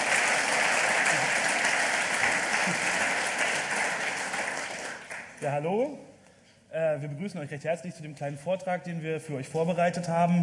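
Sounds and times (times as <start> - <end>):
crowd applauding: 0.0 - 5.4
speech: 5.4 - 6.1, 6.7 - 10.4.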